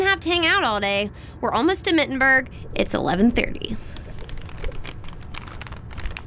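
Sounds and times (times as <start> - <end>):
speech: 0.2 - 3.9
low rumble: 1.9 - 6.2
newspaper pages rustling and crackling as they are handled: 2.4 - 6.2.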